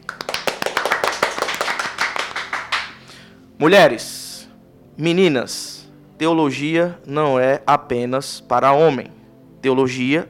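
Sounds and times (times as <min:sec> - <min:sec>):
small group applauding: 0:00.0 - 0:03.2
speech: 0:03.6 - 0:04.2, 0:05.0 - 0:10.2.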